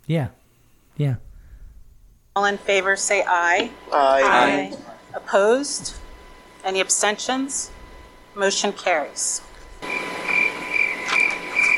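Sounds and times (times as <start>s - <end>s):
faint night ambience hiss: 0.0s - 11.7s
speech: 0.1s - 0.4s, 1.0s - 1.3s, 2.4s - 6.0s, 6.6s - 7.8s, 8.4s - 9.9s
crickets chirping: 9.8s - 11.7s.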